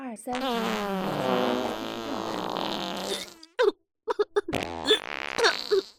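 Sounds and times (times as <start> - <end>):
loud drawn-out fart: 0.3 - 5.9.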